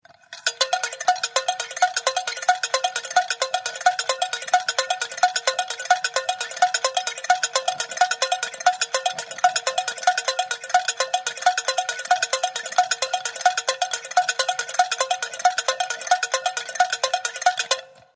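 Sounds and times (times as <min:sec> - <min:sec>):
music box being wound with medium reverb: 0:00.0 - 0:18.1.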